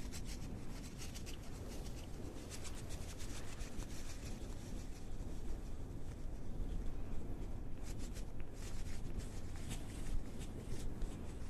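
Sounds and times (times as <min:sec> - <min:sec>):
brushing across a face: 0:00.0 - 0:11.4.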